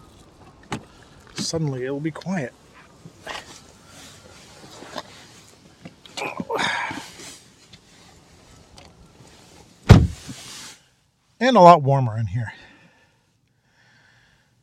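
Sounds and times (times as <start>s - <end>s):
wind: 0.0s - 14.6s
speech: 1.4s - 2.6s, 11.5s - 12.7s
shuffling and rustling of someone climbing into a car: 2.7s - 10.9s
car door slamming: 9.9s - 10.4s.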